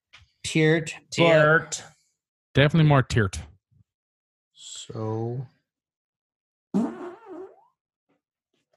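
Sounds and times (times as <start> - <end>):
speech: 0.5 - 2.0, 2.6 - 3.5, 4.8 - 5.6
short rumbling fart: 6.8 - 7.8.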